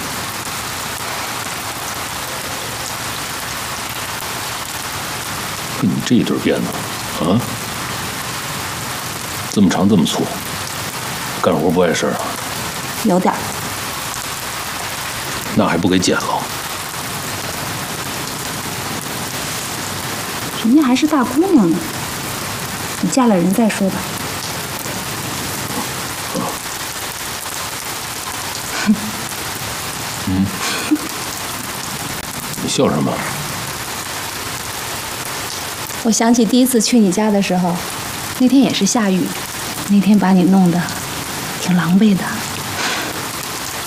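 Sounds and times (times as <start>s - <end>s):
steady rain: 0.0s - 43.8s
speech: 5.8s - 7.6s, 9.6s - 10.5s, 11.4s - 12.4s, 13.0s - 13.6s, 15.6s - 16.5s, 20.7s - 22.0s, 23.0s - 24.2s, 32.8s - 33.4s, 36.0s - 41.0s, 41.7s - 42.3s.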